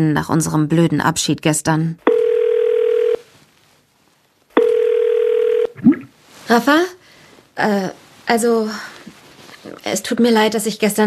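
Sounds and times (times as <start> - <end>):
speech: 0.0 - 2.2, 6.5 - 7.0, 7.6 - 9.0, 9.6 - 11.0
telephone ringback tone while a call is placed: 2.1 - 3.2, 4.6 - 5.8.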